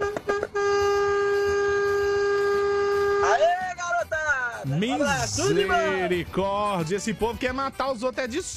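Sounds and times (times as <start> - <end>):
vehicle horn honking on the road: 0.0 - 3.6
speech: 4.8 - 8.5.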